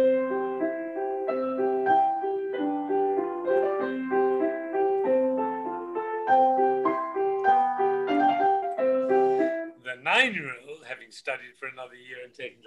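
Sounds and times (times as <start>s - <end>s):
simple piano melody with single notes and plain chords: 0.0s - 9.8s
speech: 10.2s - 12.6s.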